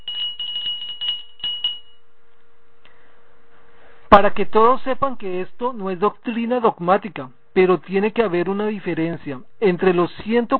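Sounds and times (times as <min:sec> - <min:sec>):
small handbell rung in quick clanging shakes: 0:00.0 - 0:02.0
speech: 0:04.1 - 0:10.5.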